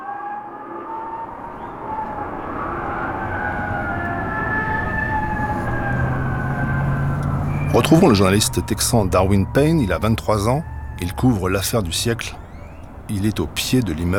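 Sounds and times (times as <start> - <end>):
police car sirens wailing: 0.0 - 14.1
traffic rumble: 0.9 - 14.1
speech: 7.8 - 12.4, 13.1 - 14.1.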